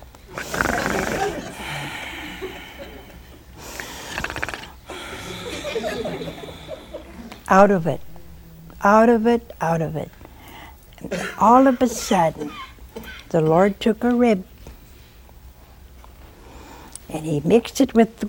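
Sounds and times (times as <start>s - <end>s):
person imitating loud snoring with their voice: 0.3s - 3.0s, 3.7s - 5.6s
laughter: 0.8s - 3.5s, 4.9s - 7.4s, 11.0s - 13.3s
speech: 7.5s - 8.1s, 8.8s - 10.2s, 11.0s - 14.5s, 17.2s - 18.2s.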